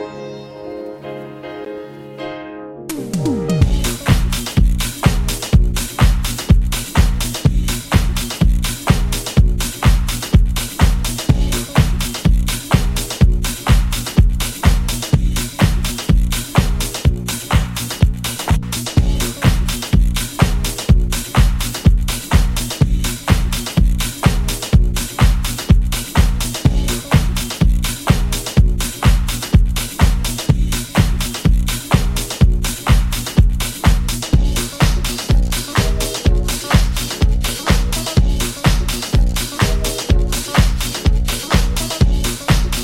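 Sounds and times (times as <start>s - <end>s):
disco banger with a wonky bassline: 2.9s - 42.7s.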